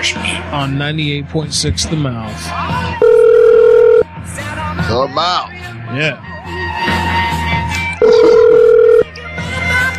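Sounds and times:
speech: 0:00.0 - 0:03.2, 0:04.8 - 0:07.0
telephone call being placed: 0:03.0 - 0:04.1, 0:08.0 - 0:09.1.

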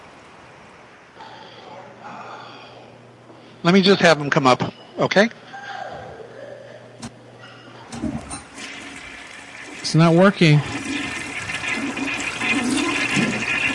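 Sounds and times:
speech: 0:03.6 - 0:05.4, 0:09.9 - 0:10.8
toilet flushing and refilling: 0:07.9 - 0:13.7.

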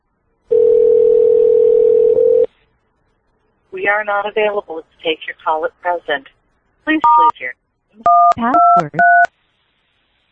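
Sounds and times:
telephone line tone as a phone is dialed: 0:00.5 - 0:02.5
speech: 0:03.9 - 0:09.3.

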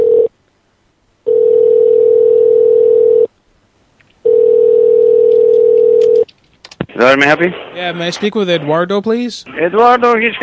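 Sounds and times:
steady telephone tone as a call is placed: 0:00.0 - 0:00.3, 0:01.2 - 0:03.3, 0:04.2 - 0:06.2
speech: 0:07.0 - 0:10.4.

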